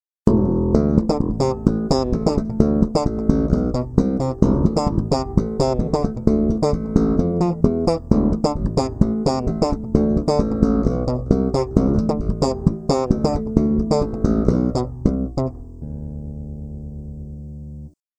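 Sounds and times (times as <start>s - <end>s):
guitar bridge through bassblaster in series: 0.3s - 17.8s.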